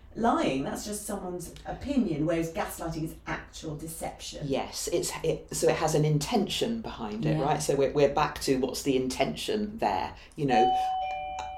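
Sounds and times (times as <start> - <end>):
speech: 0.2 - 11.0
doorbell chiming with electronic tone: 10.6 - 11.5.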